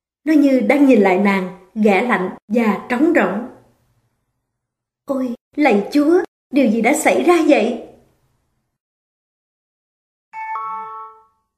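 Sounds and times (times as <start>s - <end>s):
speech: 0.2s - 3.5s, 5.1s - 7.9s
doorbell two-note ding-dong chime: 10.4s - 11.5s.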